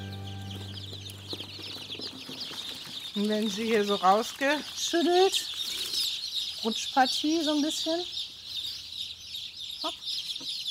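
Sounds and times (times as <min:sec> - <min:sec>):
young chicks peeping and chirping: 0:00.0 - 0:10.7
speech: 0:03.2 - 0:05.6, 0:06.6 - 0:08.2.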